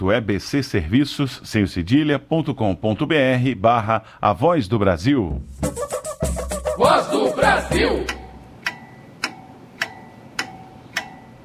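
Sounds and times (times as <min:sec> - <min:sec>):
speech: 0:00.0 - 0:05.8, 0:06.8 - 0:08.2
clock ticking: 0:06.4 - 0:11.4.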